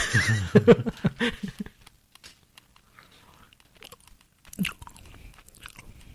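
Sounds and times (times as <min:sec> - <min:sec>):
laughter: 0:00.0 - 0:01.8
wet chewing and biting of gummy candy: 0:02.1 - 0:06.1.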